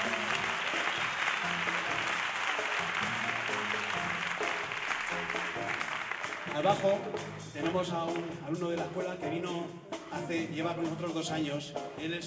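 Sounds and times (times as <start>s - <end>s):
audience applause for a pianist at a big band concert in a theater: 0.0s - 7.4s
speech: 6.6s - 12.2s.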